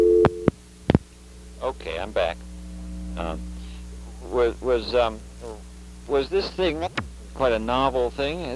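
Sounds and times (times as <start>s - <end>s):
sharp telephone line clicks: 0.2s - 0.5s
speech: 1.8s - 2.5s, 3.2s - 3.5s, 4.3s - 5.3s, 6.1s - 8.5s.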